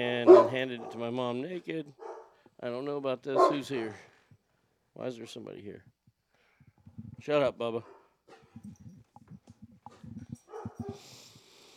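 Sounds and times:
speech: 0.0s - 4.1s, 5.0s - 5.9s, 7.2s - 8.0s, 8.6s - 8.8s
dogs barking: 0.2s - 1.2s, 1.9s - 2.4s, 3.3s - 4.0s, 10.3s - 11.0s.

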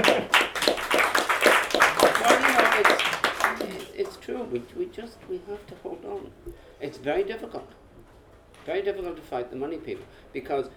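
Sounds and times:
audience clapping: 0.0s - 4.2s
speech: 4.5s - 7.8s, 8.7s - 10.7s.

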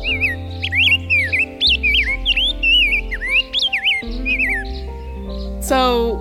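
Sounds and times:
rose-breasted grosbeak singing: 0.0s - 6.1s
soft sustained music: 0.0s - 6.1s
speech: 5.7s - 6.1s.

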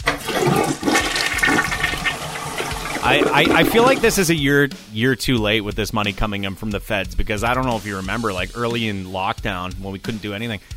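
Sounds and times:
toilet flushing: 0.0s - 4.3s
speech: 3.1s - 10.7s.

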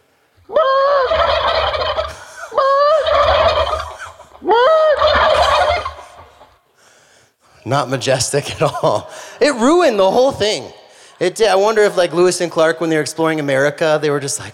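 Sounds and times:
wild turkey gobbling call: 0.5s - 6.6s
speech: 7.7s - 14.5s.

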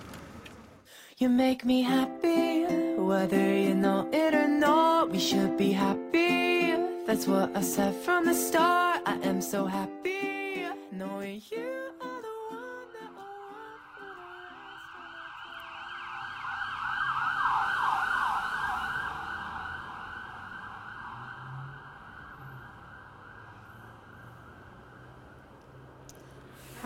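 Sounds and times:
low rumble of street traffic: 0.0s - 0.9s, 12.1s - 26.8s
speech: 1.2s - 6.3s, 7.1s - 12.0s
emergency vehicle siren wailing outside: 2.7s - 26.0s.

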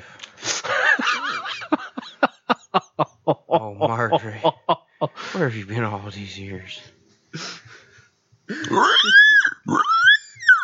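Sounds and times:
laughter: 0.6s - 5.2s
speech: 3.3s - 4.5s, 5.4s - 7.4s, 8.8s - 9.2s
pig grunting and oinking: 8.6s - 10.2s.

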